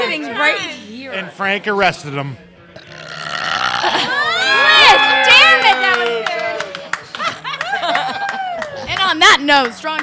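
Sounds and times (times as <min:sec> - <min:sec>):
speech: 0:00.1 - 0:02.5, 0:09.1 - 0:10.0
long loud belch rising in pitch: 0:02.8 - 0:04.4
laughter: 0:02.8 - 0:09.0.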